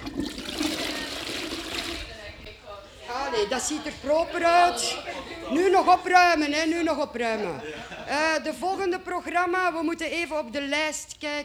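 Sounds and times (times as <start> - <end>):
toilet flushing: 0.0 - 2.5
laughter: 0.0 - 9.9
speech: 3.4 - 11.4.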